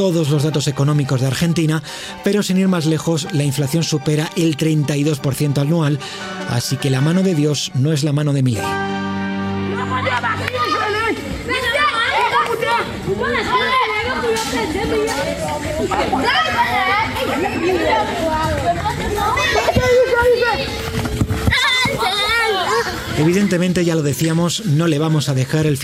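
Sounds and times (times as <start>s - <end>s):
speech: 0.0s - 9.2s, 9.9s - 10.8s, 13.2s - 20.8s, 23.2s - 25.8s
boys and girls chattering and shouting while playing football in Haiti: 0.0s - 25.8s.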